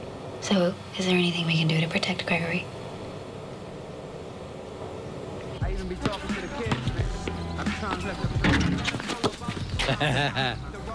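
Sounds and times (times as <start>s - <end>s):
speech: 0.4s - 2.8s, 5.8s - 6.7s, 7.8s - 9.2s, 9.9s - 10.8s
basketball bouncing on a hard court during a game of horse: 6.0s - 8.1s
laughter: 9.1s - 10.9s.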